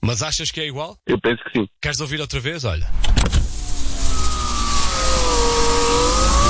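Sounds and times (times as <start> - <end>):
speech: 0.0 - 3.5
electric window motor whine on a car that is not very new: 3.3 - 6.4.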